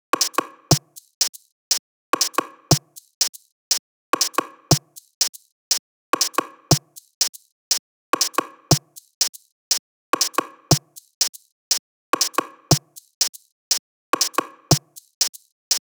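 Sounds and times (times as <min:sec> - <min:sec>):
drum top loops at 120: 0:00.2 - 0:01.5, 0:02.2 - 0:03.5, 0:04.2 - 0:05.5, 0:06.2 - 0:07.5, 0:08.2 - 0:09.5, 0:10.2 - 0:11.5, 0:12.2 - 0:15.9.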